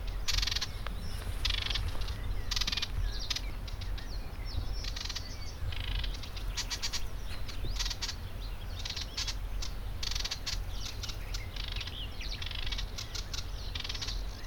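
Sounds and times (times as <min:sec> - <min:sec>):
aquatic warbler: 0:00.0 - 0:14.4.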